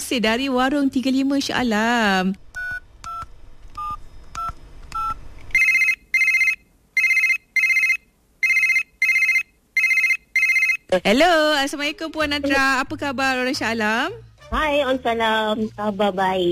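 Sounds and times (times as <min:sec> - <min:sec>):
speech: 0:00.1 - 0:02.4, 0:11.0 - 0:16.4
telephone keypad beeps: 0:02.6 - 0:10.8
paired telephone ringing tones: 0:03.8 - 0:10.9.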